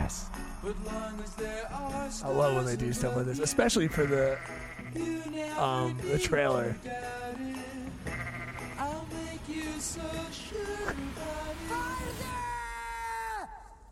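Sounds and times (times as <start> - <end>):
speech: 0.1 - 7.8, 9.5 - 12.4
sheep or goats bleating: 3.8 - 5.2, 8.0 - 8.9.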